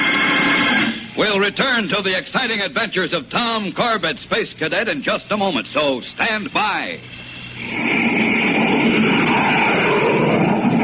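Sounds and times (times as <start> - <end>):
jet plane engine roar: 0.0 - 1.3, 7.0 - 10.8
speech: 1.2 - 8.2.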